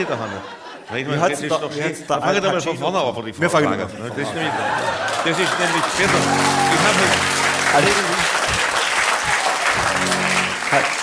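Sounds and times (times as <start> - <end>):
laughter: 0.0 - 1.4, 3.9 - 11.0
speech: 0.0 - 8.3
audience applause: 4.4 - 11.0.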